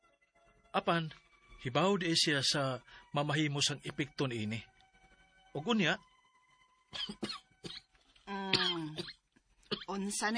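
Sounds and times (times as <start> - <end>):
speech: 0.7 - 4.7, 5.5 - 6.1, 6.9 - 7.8, 9.8 - 10.3
harsh coughing: 7.0 - 7.9, 8.5 - 9.9.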